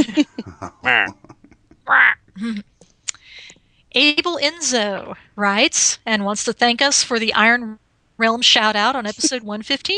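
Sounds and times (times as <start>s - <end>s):
speech: 0.0s - 1.2s, 1.9s - 2.7s, 4.0s - 9.9s
laughter: 0.0s - 1.8s, 9.1s - 9.4s
person imitating duck quacks: 0.5s - 1.3s, 1.9s - 2.2s.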